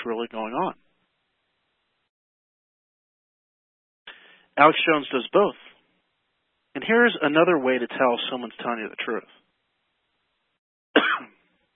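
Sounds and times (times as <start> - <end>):
speech: 0.0 - 0.8, 4.6 - 5.7, 6.8 - 9.4
short harsh raspy cough: 11.0 - 11.4.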